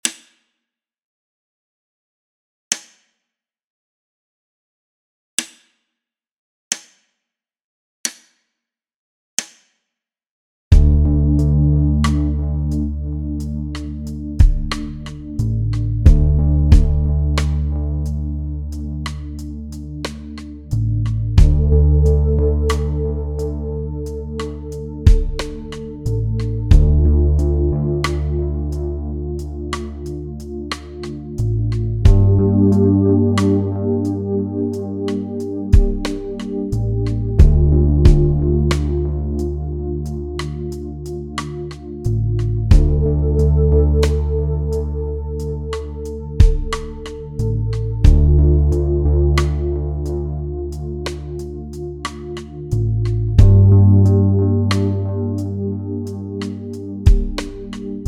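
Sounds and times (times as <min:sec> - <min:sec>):
backing track in 4/4 at 45 bpm: 0:10.8 - 0:20.6, 0:21.4 - 0:41.4, 0:42.1 - 0:58.0.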